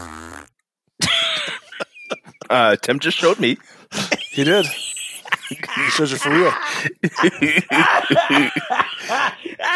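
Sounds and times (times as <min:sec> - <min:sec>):
fart sound effect: 0:00.0 - 0:00.5
laughter: 0:01.0 - 0:09.7
speech: 0:02.5 - 0:03.8, 0:04.4 - 0:04.8, 0:05.5 - 0:09.4.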